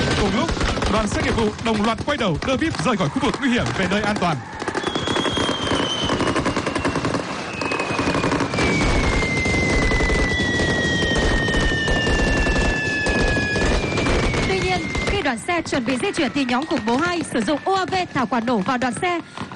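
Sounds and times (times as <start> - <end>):
dense automatic gunfire from special forces officers: 0.0 - 8.9, 9.7 - 15.2
speech: 0.2 - 4.5, 15.3 - 19.4.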